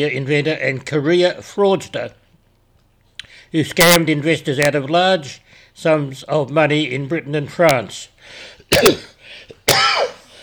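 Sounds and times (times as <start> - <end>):
speech: 0.0 - 2.2, 3.5 - 9.1
person clearing a tickle in the throat: 8.7 - 10.3.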